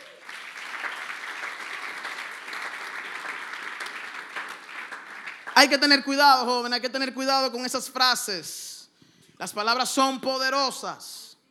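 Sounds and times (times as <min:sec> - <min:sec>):
audience applause: 0:00.0 - 0:06.0
speech: 0:05.6 - 0:08.7, 0:09.4 - 0:11.3.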